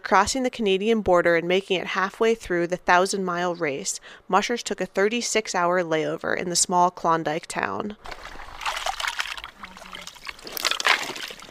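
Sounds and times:
speech: 0.1s - 8.4s
beef and kibble stew ladled into dog bowls: 8.0s - 11.4s.

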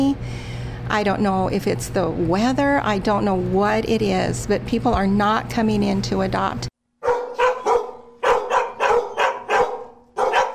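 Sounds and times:
speech: 0.0s - 6.7s
dogs barking in outdoor cages at an animal shelter: 7.0s - 10.5s.

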